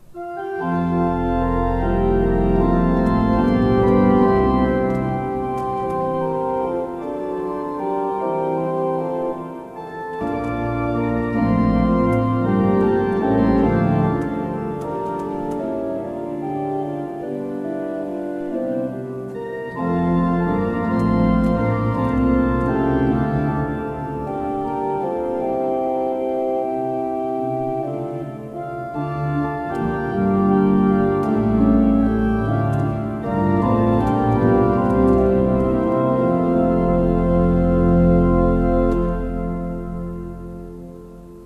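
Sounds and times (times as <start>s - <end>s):
Dutch pipe organ: 0.0s - 41.4s.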